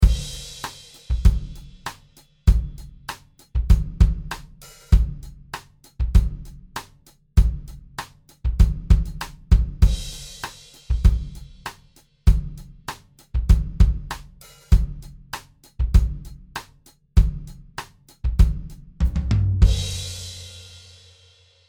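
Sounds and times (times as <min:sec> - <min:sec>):
dry pop drum beat: 0:00.0 - 0:21.2.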